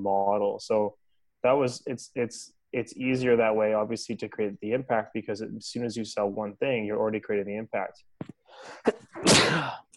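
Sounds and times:
speech: 0.0 - 9.8
loud sneeze: 8.8 - 9.9.

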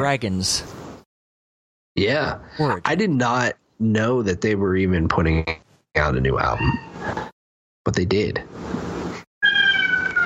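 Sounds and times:
speech: 0.0 - 0.8, 2.0 - 7.2, 7.9 - 8.8
cat meowing: 6.4 - 7.1, 9.4 - 10.2.

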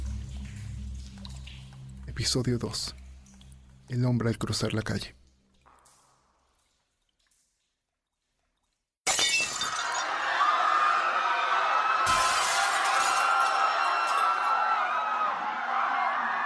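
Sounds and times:
speech: 2.2 - 3.0, 3.9 - 5.2
loud crash of breaking glass: 9.0 - 10.2, 12.1 - 14.5
chaotic rioting crowd roaring in a town centre: 9.8 - 16.4.

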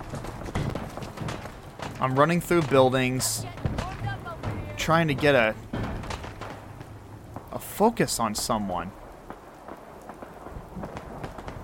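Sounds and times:
heavier raindrops tapping: 0.0 - 7.6
steady rain: 0.0 - 11.6
speech: 2.0 - 3.6, 4.8 - 5.6, 7.8 - 9.0.

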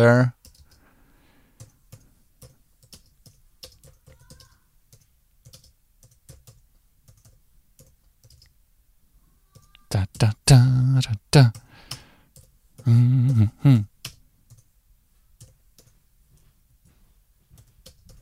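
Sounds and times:
speech: 0.0 - 0.4, 9.9 - 11.6, 12.8 - 13.9
typing on a computer keyboard: 0.4 - 0.8, 1.6 - 8.6, 9.5 - 10.2, 11.5 - 13.4, 14.0 - 14.7, 15.4 - 16.0, 17.5 - 18.2.

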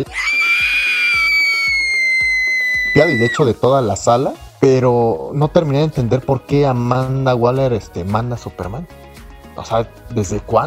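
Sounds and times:
speech: 0.0 - 0.6, 2.9 - 9.0, 9.6 - 10.6
imitated high-pitched feminine scream: 0.0 - 3.5.

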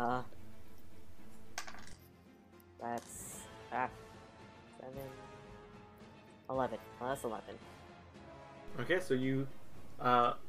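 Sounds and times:
speech: 0.0 - 0.4, 6.5 - 7.8, 8.7 - 10.4
dice tumbling across a hard tabletop: 1.5 - 2.1, 2.8 - 3.4.

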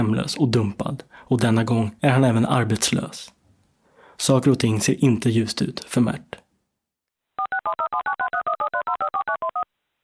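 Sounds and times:
speech: 0.0 - 3.4, 4.2 - 6.4
touch-tone telephone beeps dialing an outgoing call: 7.4 - 9.6.

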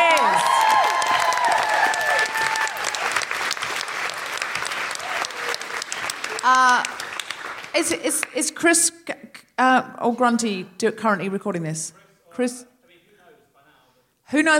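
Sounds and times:
audience cheering and whooping: 0.0 - 3.6, 4.3 - 6.6
audience applauding: 0.0 - 8.5
speech: 7.8 - 12.7, 14.3 - 14.5.

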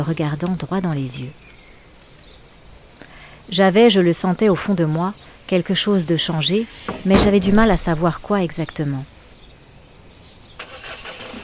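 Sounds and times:
speech: 0.0 - 1.5, 3.5 - 9.1
car engine turning over, catching and running: 10.6 - 11.4.

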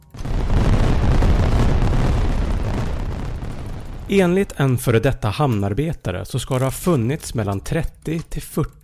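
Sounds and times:
large warehouse explosion: 0.0 - 4.6
deep roaring rumble of an explosion: 0.1 - 4.1
speech: 4.1 - 8.8.

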